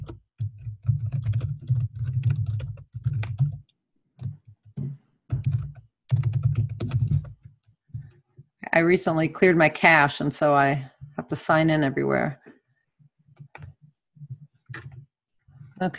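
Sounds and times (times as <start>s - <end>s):
typing on a computer keyboard to enter a name: 0.0s - 8.2s, 13.3s - 15.1s
speech: 8.8s - 12.4s, 15.8s - 15.9s.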